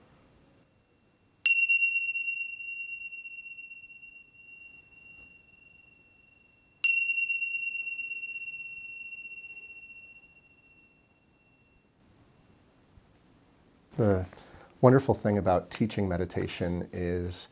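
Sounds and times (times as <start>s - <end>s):
faint room noise: 0.0s - 17.4s
meditation bell ringing: 0.6s - 12.0s
speech: 14.0s - 17.4s.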